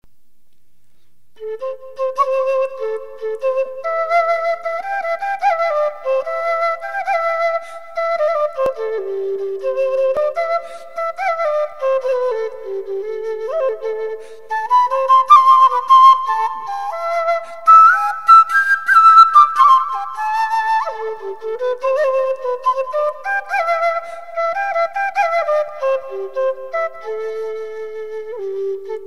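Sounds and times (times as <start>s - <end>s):
quena flute playing: 1.4s - 29.0s.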